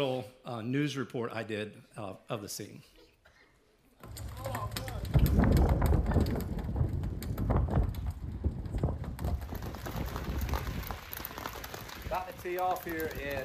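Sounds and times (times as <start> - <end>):
speech: 0.0 - 3.0, 12.4 - 13.4
hail clattering: 4.0 - 13.4.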